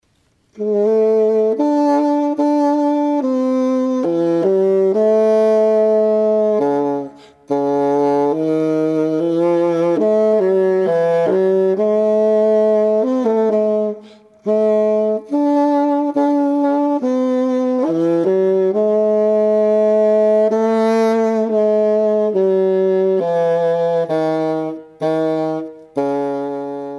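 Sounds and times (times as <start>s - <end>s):
bassoon: 0.5s - 26.9s.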